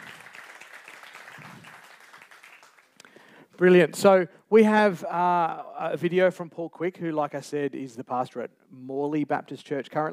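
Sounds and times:
audience applauding: 0.0s - 3.0s
speech: 3.6s - 10.1s.

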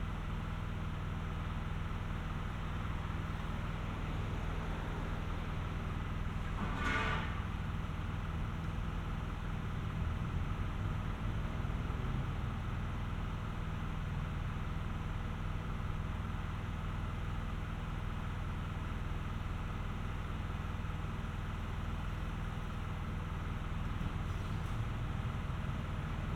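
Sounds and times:
engines idling during road repair work on a street: 0.0s - 26.3s
sharp clank with a brief hiss: 6.6s - 7.5s.

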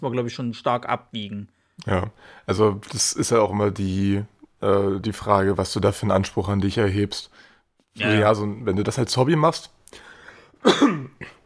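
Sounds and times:
speech: 0.0s - 11.4s
person sneezing: 10.6s - 11.4s.

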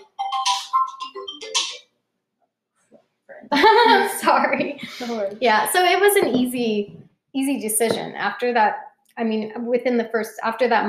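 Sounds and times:
phone ringtone for an incoming call: 0.0s - 1.8s
laughter: 3.5s - 4.9s
speech: 3.6s - 10.8s.

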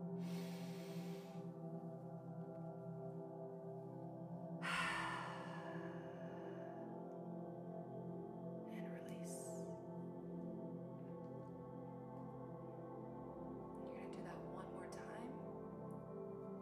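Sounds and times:
steady low sustained tone: 0.0s - 16.6s
deep breaths drawn in through the nose during a guided meditation: 0.2s - 1.5s, 4.6s - 6.9s.

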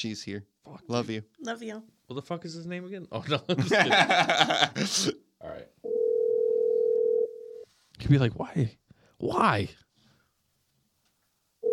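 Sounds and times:
speech: 0.0s - 5.8s, 8.0s - 9.8s
laughter: 3.2s - 5.0s
ringing tone of an outgoing phone call: 5.8s - 7.6s.

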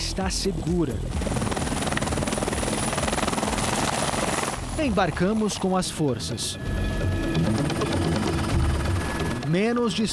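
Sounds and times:
helicopter rotor chopping at range: 0.0s - 10.1s
speech: 0.2s - 1.4s, 4.8s - 7.5s, 9.5s - 10.1s.

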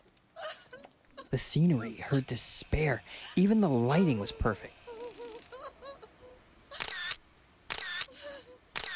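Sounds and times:
speech: 1.4s - 4.8s
camera shutter clicks: 6.8s - 8.1s, 8.7s - 8.9s.

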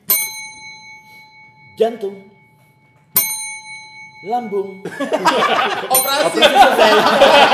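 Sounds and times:
bright bell strike with metallic tone: 0.0s - 5.1s, 5.8s - 6.5s
speech: 1.8s - 2.4s, 4.2s - 7.5s
laughter: 4.9s - 7.5s.

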